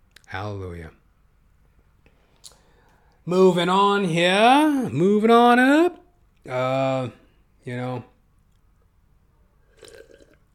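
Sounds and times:
speech: 0.3s - 1.0s, 3.2s - 8.1s
person sipping and swallowing water: 9.6s - 10.5s.

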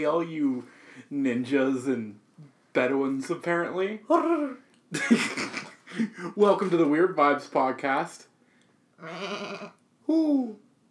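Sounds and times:
speech: 0.0s - 8.3s, 9.0s - 10.6s
person imitating goat bleats: 9.0s - 9.8s.

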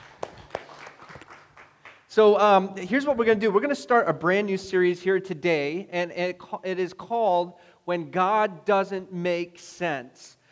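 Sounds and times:
scattered handclaps from an audience: 0.0s - 2.1s
speech: 2.1s - 10.4s.

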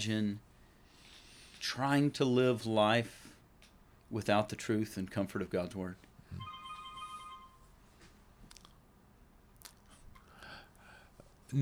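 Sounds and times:
speech: 0.0s - 0.5s, 1.6s - 3.2s, 4.1s - 6.5s
faint electronic phone ring: 6.3s - 7.8s.

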